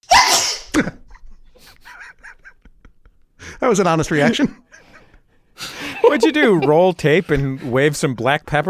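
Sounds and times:
single loud forced sneeze: 0:00.0 - 0:00.9
speech: 0:00.8 - 0:01.0, 0:03.7 - 0:04.6, 0:06.1 - 0:08.6
laughter: 0:00.8 - 0:08.0
faint breath: 0:04.8 - 0:06.0.

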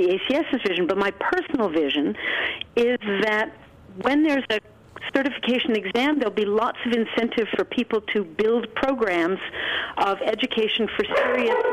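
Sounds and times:
speech: 0:00.0 - 0:11.7
dog barking in short sharp yaps: 0:11.1 - 0:11.7.

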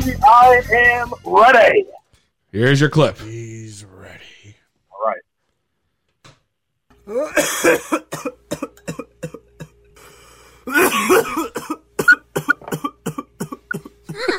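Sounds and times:
speech: 0:00.0 - 0:04.3, 0:07.1 - 0:09.1
weak coughing: 0:07.1 - 0:09.8, 0:10.7 - 0:14.3.

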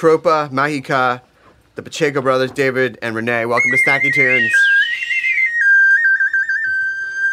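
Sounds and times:
speech: 0:00.0 - 0:05.0
person whistling a high tone: 0:03.6 - 0:07.3.

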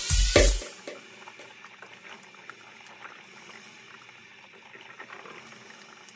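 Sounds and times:
tea kettle boiling: 0:00.2 - 0:06.1
faint quiet simmer: 0:00.7 - 0:06.1.

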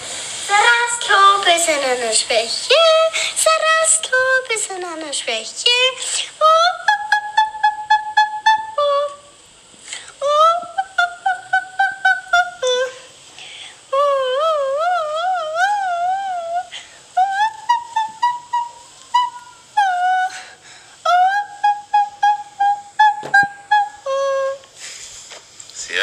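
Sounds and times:
soprano voice singing an operatic aria: 0:00.5 - 0:09.4, 0:10.1 - 0:13.1, 0:13.8 - 0:24.7
speech: 0:01.6 - 0:06.8.

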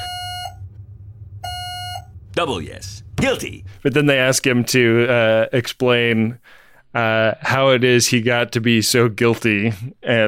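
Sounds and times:
loud buzzy electronic beeps: 0:00.0 - 0:03.8
low rumble: 0:00.0 - 0:10.2
speech: 0:02.4 - 0:10.2.

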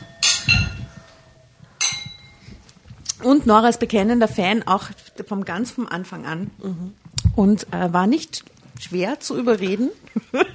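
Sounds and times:
glasses clinking in a toast: 0:00.0 - 0:02.5
speech: 0:03.2 - 0:10.5
laughter: 0:10.1 - 0:10.5.

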